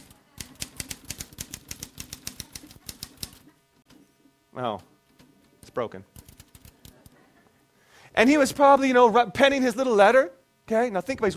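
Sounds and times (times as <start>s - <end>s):
typewriter keys clacking: 0.0s - 3.4s, 6.2s - 7.2s
speech: 4.6s - 4.9s, 5.8s - 6.2s, 8.2s - 11.3s.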